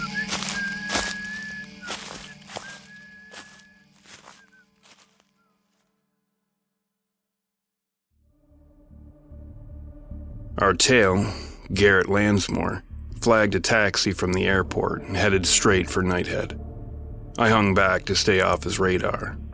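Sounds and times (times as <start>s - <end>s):
person whistling a tune: 0.0s - 3.8s
crunching, swishing footsteps through dry leaves: 0.0s - 5.8s
speech: 10.6s - 16.6s, 17.4s - 19.4s.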